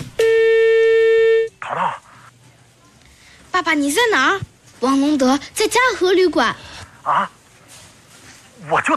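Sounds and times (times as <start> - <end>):
long steady electronic telephone tone: 0.2 - 1.5
speech: 3.7 - 7.4, 8.7 - 8.9.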